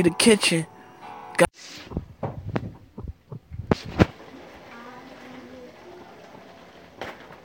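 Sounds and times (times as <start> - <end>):
speech: 0.0 - 0.8, 1.4 - 2.0
low thumps of a heartbeat: 1.9 - 4.1.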